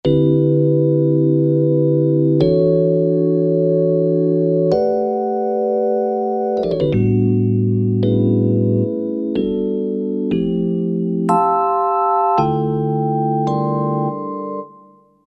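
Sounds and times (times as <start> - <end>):
electric piano chord from a Roland SRX-05 Supreme Dance: 0.0 - 15.0.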